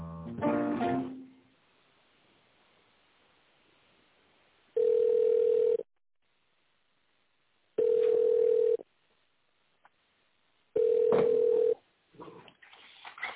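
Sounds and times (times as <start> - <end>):
ringback tone beeps on a telephone line: 4.8 - 5.8, 7.8 - 8.8, 10.8 - 11.8.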